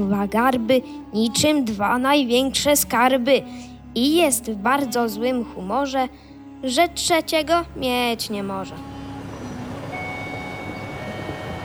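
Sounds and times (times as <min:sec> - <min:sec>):
speech: 0:00.0 - 0:08.9
train departing from a station: 0:07.6 - 0:11.6
faint high whine: 0:08.4 - 0:11.6.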